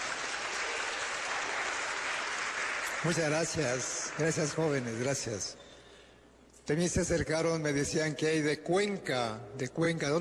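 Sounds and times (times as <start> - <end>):
audience applause greeting a delegation at a gathering: 0.0 - 4.8
speech: 3.0 - 5.7, 6.7 - 10.1.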